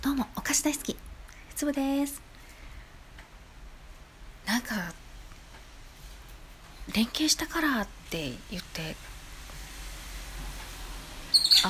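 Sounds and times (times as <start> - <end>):
speech: 0.0 - 2.3, 4.5 - 5.0, 6.9 - 9.1
soft steady rain falling outside: 5.0 - 11.6.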